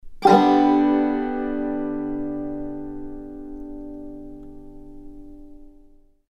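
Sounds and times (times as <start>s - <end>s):
banjo in G: 0.2s - 5.3s.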